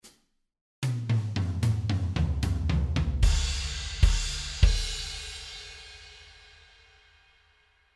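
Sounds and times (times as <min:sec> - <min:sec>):
slow blues drum ending: 0:00.8 - 0:06.4.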